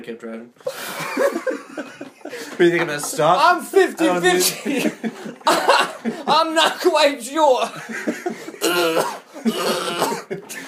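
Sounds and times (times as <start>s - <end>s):
speech: 0.0s - 5.7s, 6.3s - 10.6s
laughter: 0.7s - 10.6s
heavy coughing: 4.6s - 7.0s, 7.8s - 10.6s.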